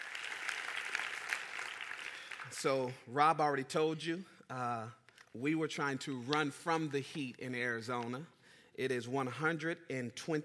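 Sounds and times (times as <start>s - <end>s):
audience applauding in honour of a pastor's anniversary: 0.0s - 2.9s
speech: 2.5s - 10.4s.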